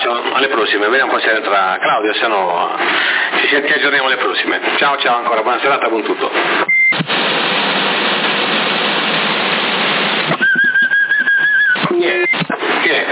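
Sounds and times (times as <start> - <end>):
CB radio static hiss: 0.0 - 10.4, 11.6 - 13.0
speech: 0.4 - 6.7
person whistling over a CB radio on the 27 MHz band: 10.3 - 12.6.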